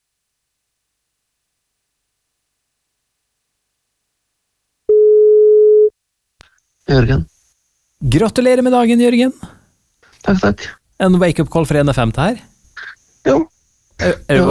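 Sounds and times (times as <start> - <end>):
telephone ringback tone as a call connects: 4.9 - 5.9
speech: 6.9 - 7.3, 8.0 - 9.6, 10.2 - 14.4.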